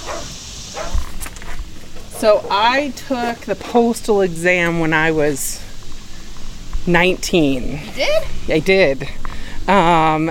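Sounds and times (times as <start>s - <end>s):
dogs barking: 0.0s - 1.0s
speech: 2.2s - 5.6s, 6.8s - 10.2s.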